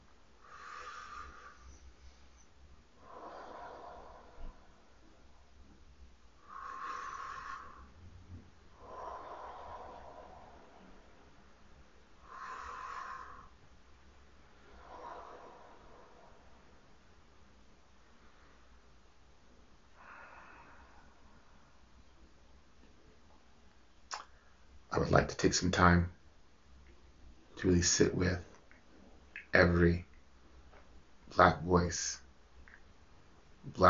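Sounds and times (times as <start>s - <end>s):
slow deliberate breathing: 0.0s - 22.5s
speech: 25.0s - 26.2s, 27.6s - 28.5s, 29.5s - 30.1s, 31.3s - 32.2s, 33.7s - 33.8s.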